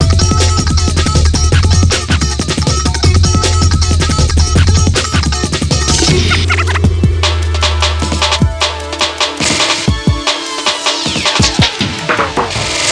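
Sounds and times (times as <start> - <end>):
funky drum and bass music: 0.0 - 12.9.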